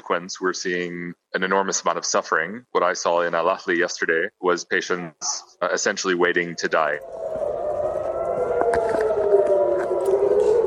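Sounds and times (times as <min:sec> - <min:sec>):
speech: 0:00.1 - 0:07.2
air raid warning sirens wailing: 0:06.2 - 0:10.6.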